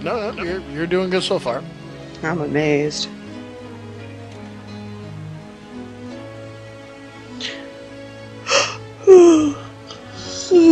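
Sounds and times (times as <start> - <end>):
speech: 0.0 - 3.2
person yawning: 8.5 - 10.7.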